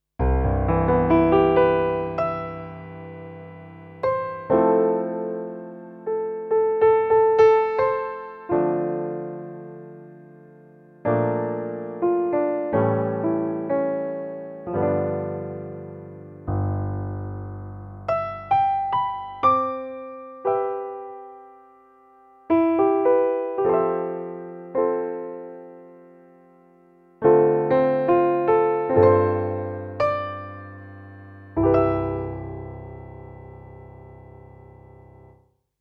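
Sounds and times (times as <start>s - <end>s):
digital concert acoustic piano: 0.2s - 35.4s.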